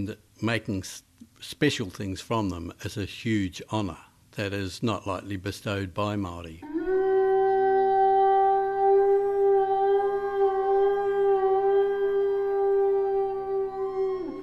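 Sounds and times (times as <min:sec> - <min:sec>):
speech: 0:00.0 - 0:06.7
long reedy note of a whalebone wind instrument: 0:06.6 - 0:14.4.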